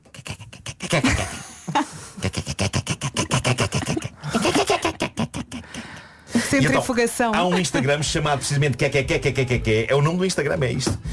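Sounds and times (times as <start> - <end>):
person imitating cats chattering at a fly: 0.0 - 1.4, 2.2 - 5.6
speech: 0.9 - 1.4, 6.6 - 11.1
laughter: 3.7 - 5.2, 7.4 - 8.5.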